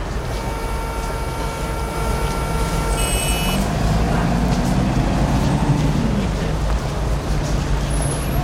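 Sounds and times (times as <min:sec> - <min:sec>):
tonal whines and hum: 0:00.0 - 0:03.7
heavy road traffic at the main entrance to Portugalete off the A8: 0:00.0 - 0:08.4
vehicle sweeping past: 0:02.6 - 0:08.4.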